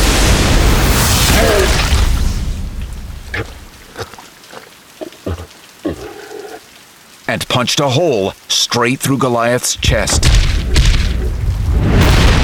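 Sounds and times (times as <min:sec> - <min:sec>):
loud crackling lightning blast from a glowing hammer: 0:00.0 - 0:03.9, 0:09.8 - 0:12.4
speech: 0:07.3 - 0:10.7.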